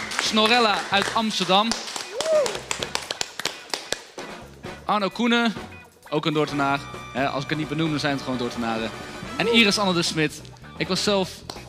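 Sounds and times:
sparse hand claps: 0.0 - 4.3, 11.4 - 11.6
speech: 0.3 - 3.0, 4.9 - 11.6.

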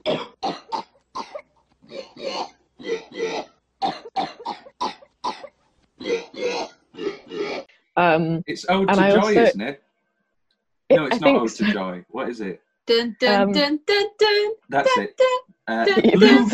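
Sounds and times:
sampled coughs played as a melody on a keyboard: 0.0 - 1.4, 2.0 - 7.7, 15.7 - 16.5
speech: 8.0 - 9.8, 11.0 - 16.5
laughter: 8.5 - 9.7, 10.9 - 12.5, 13.2 - 13.6, 14.7 - 15.1, 15.7 - 16.5.

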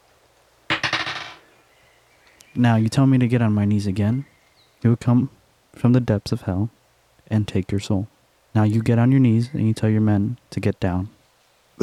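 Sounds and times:
dice clattering onto a hard table in a game: 0.7 - 1.4
speech: 2.6 - 11.2.

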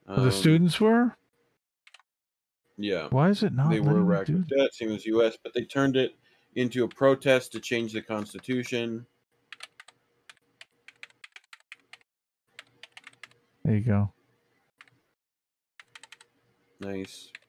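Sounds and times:
speech: 0.1 - 1.2, 2.8 - 9.1, 13.7 - 14.2, 16.8 - 17.4
clicky computer keyboard typing into a chat: 9.5 - 13.4, 14.8 - 15.0, 15.8 - 17.4.

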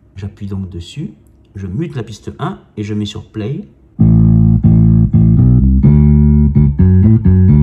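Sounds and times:
speech: 0.2 - 3.8
keyboard bass line of sustained low synth notes: 4.0 - 7.6.

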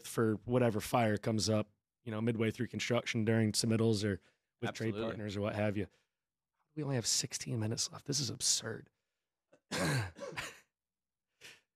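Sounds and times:
speech: 0.1 - 6.0, 6.8 - 9.0, 9.7 - 10.6
throat clearing: 9.7 - 10.6
stifled coughing: 9.7 - 10.7.

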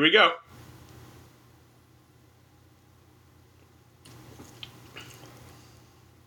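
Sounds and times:
low hum: 0.0 - 6.2
wet mouth clicks: 4.0 - 5.5
person sipping a pumpkin-spiced coffee latte: 4.1 - 5.8.

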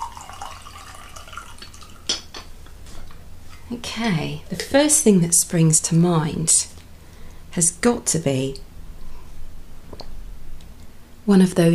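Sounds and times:
tea pouring into a cup: 0.0 - 2.1
speech: 3.7 - 6.7, 7.6 - 8.7, 11.3 - 11.7.

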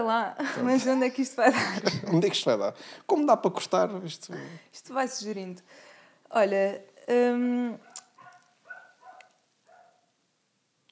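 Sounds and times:
speech: 0.0 - 7.9
laughter: 0.4 - 2.5
dog barking: 7.8 - 10.1.

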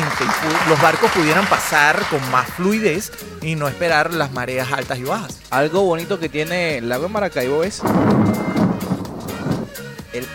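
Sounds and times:
speech: 0.2 - 8.5, 10.2 - 10.3
scattered sharp crackles: 7.8 - 9.9
steady hiss of rain: 7.8 - 9.9
deep rolling thunder from a lightning storm: 7.8 - 10.2.

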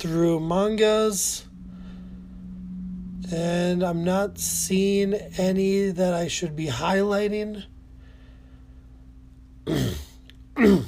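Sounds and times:
speech: 0.0 - 1.5, 3.3 - 7.7
faint hum: 0.0 - 10.8
person clearing throat: 9.6 - 10.8.

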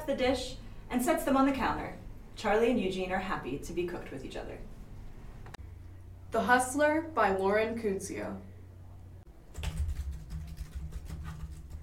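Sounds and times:
speech: 0.1 - 4.7, 6.3 - 8.5
rapid typing on a computer keyboard: 9.5 - 11.8.

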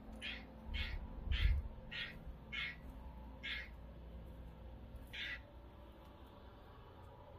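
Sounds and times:
low rumble: 0.0 - 7.3
frog croaking outdoors by a bedroom window on a sunny day: 0.2 - 3.8, 5.1 - 5.4.

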